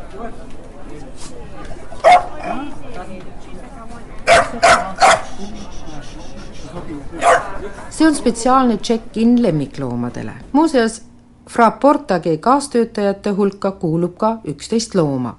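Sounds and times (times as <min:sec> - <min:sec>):
murmur of voices: 0:00.0 - 0:11.4
speech: 0:00.1 - 0:15.3
small dog yapping: 0:02.0 - 0:02.6, 0:04.3 - 0:05.4, 0:07.2 - 0:07.5.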